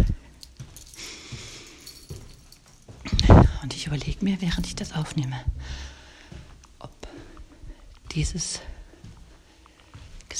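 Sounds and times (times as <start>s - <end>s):
keys jangling: 0.0s - 6.0s
handling noise: 0.1s - 8.1s
speech: 3.8s - 5.9s, 8.2s - 8.7s.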